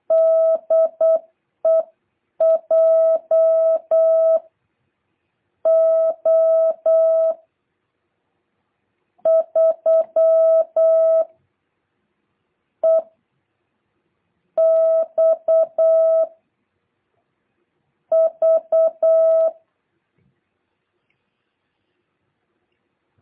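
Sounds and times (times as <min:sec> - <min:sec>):
Morse code CW beeping tone sending an amateur radio callsign: 0:00.1 - 0:04.4, 0:05.7 - 0:07.4, 0:09.3 - 0:11.3, 0:12.8 - 0:13.1, 0:14.6 - 0:16.3, 0:18.1 - 0:19.6.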